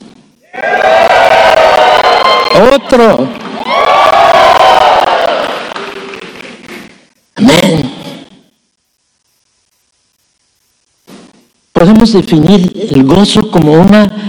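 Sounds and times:
whoops from the audience: 0.4 - 2.7, 3.6 - 6.0
audience shouting and cheering in response to a preacher: 0.4 - 6.7
speech: 2.6 - 3.4, 11.9 - 14.2.

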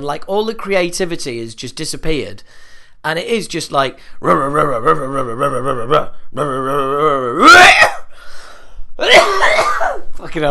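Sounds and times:
speech: 0.0 - 7.9, 9.0 - 10.4
person groaning: 4.2 - 8.1
person coughing: 9.0 - 10.1.

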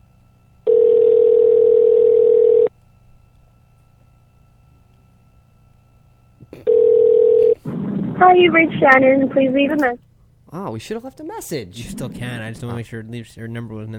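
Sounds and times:
phone ringback tone on an outgoing call: 0.7 - 2.7, 6.7 - 7.6
speech: 8.2 - 13.9.

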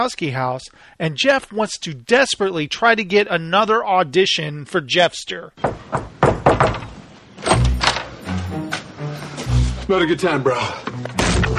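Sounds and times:
speech: 0.0 - 6.1, 9.9 - 11.2
door slammed shut on someone's hand: 5.6 - 8.9, 11.1 - 11.5.

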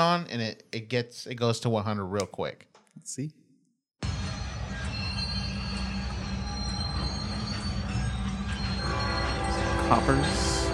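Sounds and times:
speech: 0.0 - 3.4, 9.9 - 10.5
train wheels squealing and hissing: 4.2 - 10.7
train rumbling on rails: 4.4 - 10.7.

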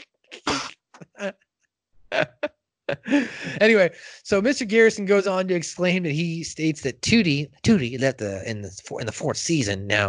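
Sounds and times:
person coughing: 0.4 - 1.3, 2.2 - 3.7
speech: 1.2 - 1.4, 2.2 - 2.4, 3.1 - 10.0
laughter: 2.2 - 4.2.

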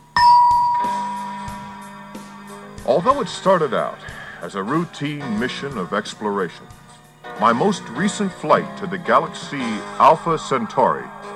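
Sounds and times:
bright storybook page-turn chime: 0.1 - 1.9
speech: 2.9 - 6.8, 7.4 - 11.2.

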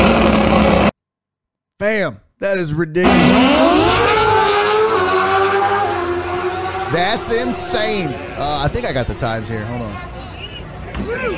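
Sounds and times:
racing motorcycles roaring at a packed race event: 0.0 - 0.9, 3.0 - 10.2
speech: 1.8 - 4.0, 6.9 - 10.1.

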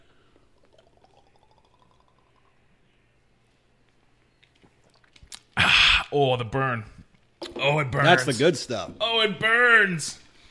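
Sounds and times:
Fireball whisky poured into a small shot glass: 0.4 - 2.7
speech: 6.1 - 7.0, 7.6 - 10.2.

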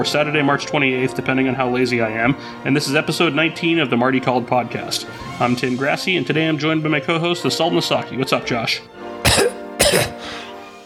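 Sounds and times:
speech: 0.0 - 10.4
sharp dry coughs: 9.2 - 10.4.

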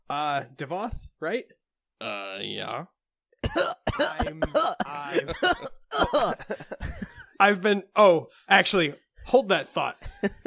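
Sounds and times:
speech: 0.1 - 3.0, 3.6 - 6.8, 7.4 - 10.4
throaty voiced gagging: 3.4 - 6.4
person coughing and hacking: 3.4 - 7.3.

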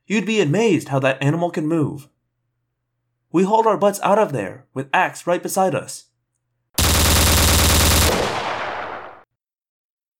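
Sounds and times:
speech: 0.1 - 2.1, 3.3 - 6.1
rapid machine gun fire with rumbling echo: 6.8 - 9.3.

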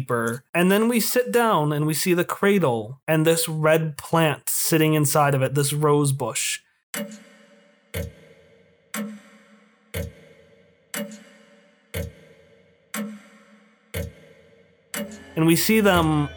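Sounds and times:
loud resonant clock ticking: 0.0 - 1.1, 7.9 - 8.3, 9.0 - 9.3, 9.9 - 10.4, 11.0 - 11.3, 11.9 - 13.3, 13.9 - 14.4, 15.0 - 16.3
speech: 0.0 - 7.3, 8.0 - 8.2, 15.4 - 16.3.

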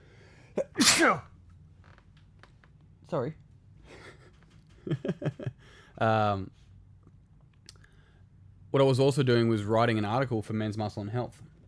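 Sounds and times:
person sneezing: 0.6 - 1.3
speech: 0.6 - 1.3, 3.1 - 3.4, 4.9 - 6.6, 8.7 - 11.5.

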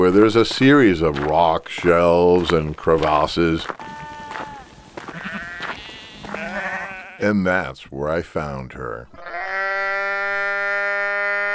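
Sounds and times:
speech: 0.0 - 3.8, 7.2 - 9.3
sheep bleating in harsh strained cries: 3.0 - 7.3, 9.2 - 11.5.

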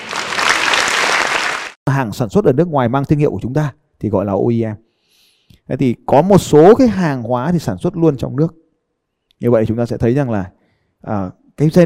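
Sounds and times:
big round of applause: 0.0 - 1.8
speech: 2.0 - 4.9, 5.7 - 8.6, 9.4 - 11.8.

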